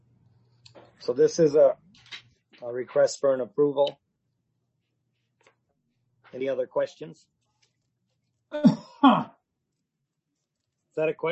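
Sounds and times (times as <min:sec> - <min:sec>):
speech: 0:01.0 - 0:01.8, 0:02.6 - 0:04.0, 0:06.3 - 0:07.3, 0:08.5 - 0:09.3, 0:11.0 - 0:11.2
person clearing throat: 0:08.6 - 0:09.4.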